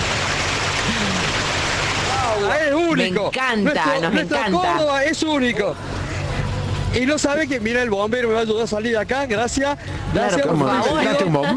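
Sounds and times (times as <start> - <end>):
roar of rushing water: 0.0 - 8.0
speech: 2.5 - 6.0, 6.9 - 11.5.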